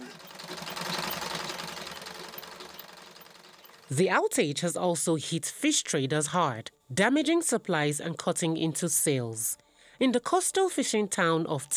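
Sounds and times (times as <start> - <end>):
pedal-operated sewing machine stitching children's uniforms: 0.0 - 4.0
speech: 3.9 - 11.7.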